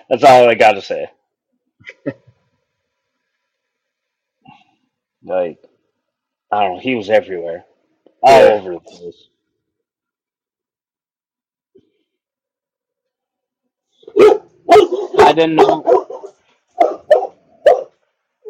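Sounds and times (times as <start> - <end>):
speech: 0.1 - 1.2, 5.2 - 5.7, 6.5 - 9.3, 14.1 - 16.1
dogs barking: 14.0 - 18.4.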